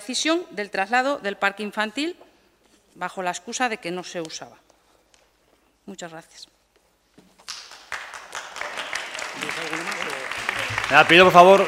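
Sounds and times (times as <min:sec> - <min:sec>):
speech: 0:00.1 - 0:02.2, 0:03.0 - 0:04.6, 0:05.9 - 0:06.6, 0:10.9 - 0:11.6
crowd applause: 0:07.5 - 0:11.6.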